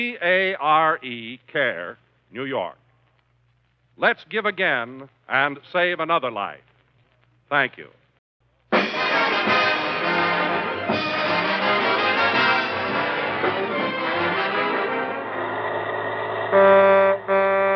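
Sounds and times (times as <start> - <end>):
speech: 0.0 - 2.8, 4.0 - 6.7, 7.5 - 8.0
bus horn blaring: 8.8 - 17.7
bus engine roaring in traffic: 11.7 - 17.7.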